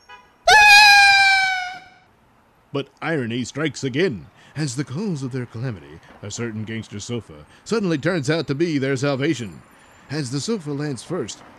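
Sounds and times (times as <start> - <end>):
grown men shrieking: 0.5 - 1.9
speech: 2.7 - 11.5.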